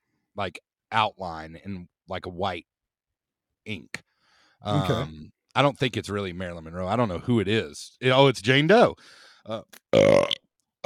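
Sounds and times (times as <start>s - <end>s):
speech: 0.4s - 2.7s, 3.6s - 4.0s, 4.6s - 10.8s
loud drawn-out low resonant burp: 9.9s - 10.4s.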